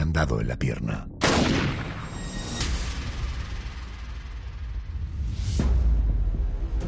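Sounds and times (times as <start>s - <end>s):
speech: 0.2s - 1.7s
dark booming background: 0.9s - 6.8s
gunshots: 1.2s - 2.4s.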